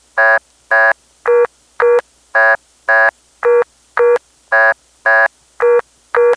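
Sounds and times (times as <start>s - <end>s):
vacant code tone beeps on an independent telephone network: 0.2s - 6.3s.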